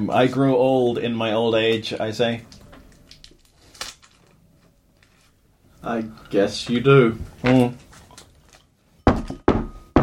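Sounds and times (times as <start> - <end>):
speech: 0.0 - 2.6, 5.8 - 7.9
knocking on the outside of a door: 9.1 - 10.0.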